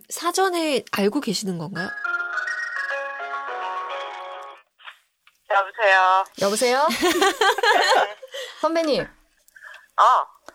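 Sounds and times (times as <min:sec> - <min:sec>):
speech: 0:00.1 - 0:02.0, 0:05.8 - 0:09.2, 0:10.0 - 0:10.3
phone ringing through a speakerphone as a call is placed: 0:01.8 - 0:04.6
laughter: 0:06.9 - 0:08.5.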